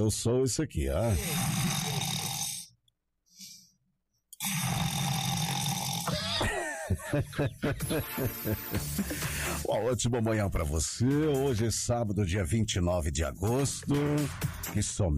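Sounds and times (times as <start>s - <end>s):
speech: 0.0s - 1.8s, 7.1s - 15.1s
person snoring loudly with a rough piglike rasp: 1.0s - 2.7s, 4.4s - 6.4s
laughter: 6.1s - 9.7s.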